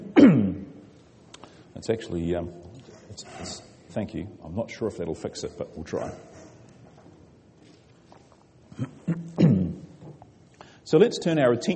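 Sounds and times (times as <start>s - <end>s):
rough voiced throat-clearing rumble: 0.0s - 0.7s, 8.7s - 10.2s
sharp cough: 0.0s - 0.7s, 8.8s - 9.8s
speech: 1.8s - 6.4s, 10.9s - 11.7s.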